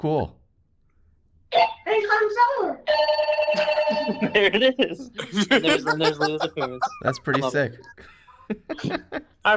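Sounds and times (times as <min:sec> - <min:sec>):
speech: 0:00.0 - 0:00.4, 0:02.1 - 0:09.5
toy walkie-talkie electronic ringtone like an old landline telephone: 0:02.9 - 0:04.4
laughter: 0:03.5 - 0:09.4.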